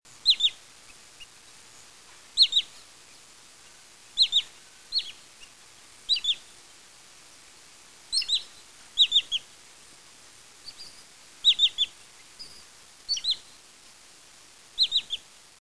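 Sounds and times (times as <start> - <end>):
wood sandpiper songs: 0.1 - 6.6, 8.1 - 9.5, 10.6 - 13.6, 14.8 - 15.3.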